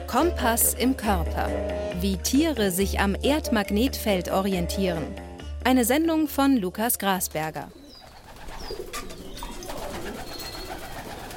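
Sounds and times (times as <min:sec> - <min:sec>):
speech: 0:00.1 - 0:07.8
scattered pigeon chirps: 0:07.4 - 0:10.9
about two dozen white pigeons cooing in a wooden coop: 0:07.6 - 0:11.3
white pigeons wing flutter: 0:07.8 - 0:11.3.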